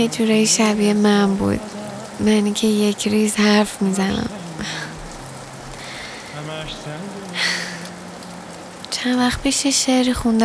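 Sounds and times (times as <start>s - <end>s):
speech: 0.0s - 4.9s, 6.4s - 7.5s, 9.0s - 10.4s
steady rain: 0.0s - 10.4s.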